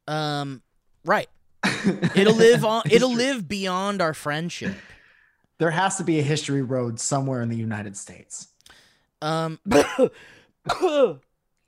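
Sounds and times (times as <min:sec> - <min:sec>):
speech: 0:00.1 - 0:05.0, 0:05.6 - 0:11.3
hacking throat-clearing: 0:09.4 - 0:11.3
person coughing raspily: 0:09.7 - 0:11.2.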